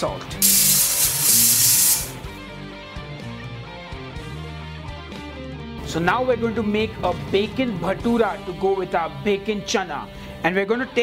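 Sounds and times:
speech: 0:00.0 - 0:00.6, 0:05.9 - 0:11.0
pressure cooker hissing while cooking chickpeas with a tea bag: 0:00.4 - 0:02.2.

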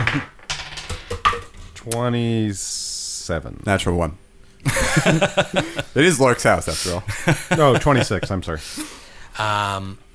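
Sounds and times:
dice clattering across a hard tabletop: 0:00.0 - 0:01.7
speech: 0:01.8 - 0:10.0
laughter: 0:04.6 - 0:06.0, 0:06.8 - 0:08.4.

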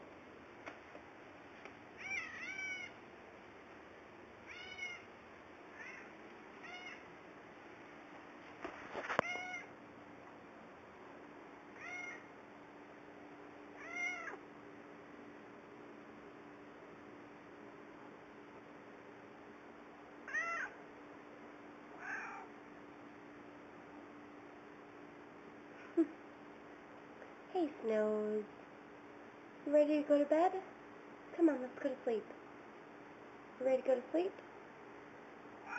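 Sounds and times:
domestic cat meowing: 0:02.0 - 0:03.0, 0:04.5 - 0:05.1, 0:05.8 - 0:07.0, 0:09.2 - 0:09.7, 0:11.8 - 0:12.3, 0:13.8 - 0:14.4, 0:20.3 - 0:20.8, 0:22.0 - 0:22.5
speech: 0:26.0 - 0:26.2, 0:27.6 - 0:28.6, 0:29.7 - 0:30.7, 0:31.4 - 0:32.4, 0:33.6 - 0:34.4.

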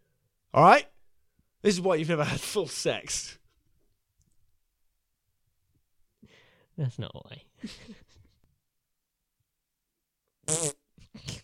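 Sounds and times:
speech: 0:00.5 - 0:00.9, 0:01.6 - 0:03.4, 0:06.8 - 0:08.0, 0:10.5 - 0:11.4
loud buzzy fart: 0:10.5 - 0:11.4.

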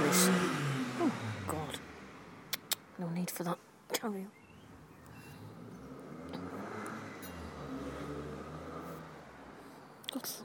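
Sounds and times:
car engine revving with throaty roar: 0:00.0 - 0:02.9, 0:04.4 - 0:09.7
speech: 0:03.0 - 0:04.4, 0:10.2 - 0:10.4.

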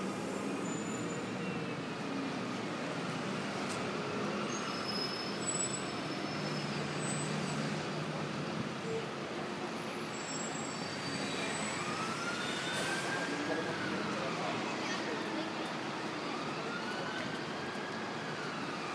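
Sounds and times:
city buses passing a bus stop without stopping: 0:00.0 - 0:18.9
constant wash of traffic noise: 0:00.0 - 0:18.9
high brake squeals: 0:00.1 - 0:01.8, 0:04.4 - 0:07.9, 0:09.8 - 0:13.6.

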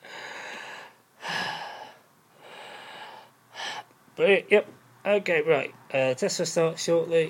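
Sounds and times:
person breathing in and out at a relaxed pace: 0:00.0 - 0:03.9
speech: 0:04.2 - 0:07.2.

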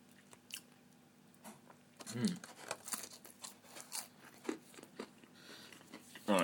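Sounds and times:
quiet room hum: 0:00.0 - 0:06.4
munching on a crunchy onion snack: 0:02.0 - 0:06.3.

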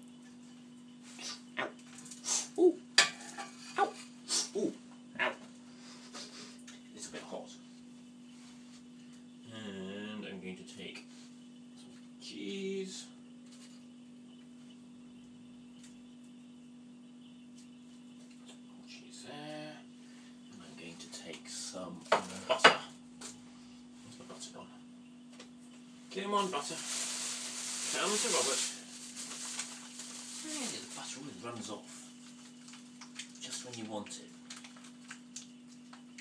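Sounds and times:
steady low hum: 0:00.0 - 0:36.1
dishes clattering as a plate is lifted off a kitchen draining board: 0:03.0 - 0:04.0
speech: 0:26.3 - 0:26.8, 0:28.1 - 0:28.6, 0:33.8 - 0:34.4.

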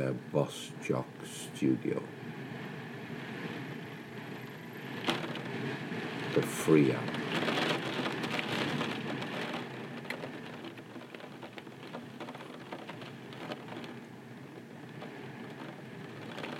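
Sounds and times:
speech: 0:00.1 - 0:02.2, 0:06.4 - 0:07.4
rain falling on a surface: 0:03.3 - 0:16.5.

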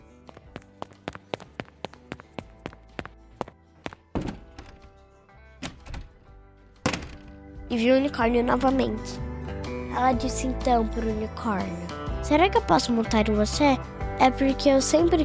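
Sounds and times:
girl's running footsteps: 0:00.0 - 0:05.0
heavy thumps: 0:02.7 - 0:05.0
door being opened with a rattling clunk: 0:04.2 - 0:05.0, 0:05.6 - 0:06.2
speech: 0:07.7 - 0:09.2, 0:10.0 - 0:15.2.

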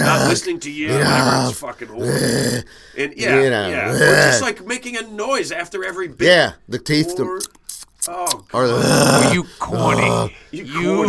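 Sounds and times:
person groaning imitating an audience groaning at a joke: 0:00.0 - 0:02.6, 0:03.8 - 0:04.4, 0:08.7 - 0:10.3
speech: 0:00.3 - 0:11.0.

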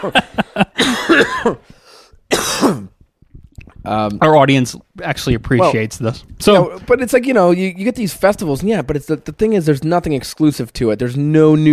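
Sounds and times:
speech: 0:00.0 - 0:00.7, 0:03.9 - 0:11.7
laughter: 0:00.0 - 0:01.0
person coughing: 0:00.7 - 0:03.0.

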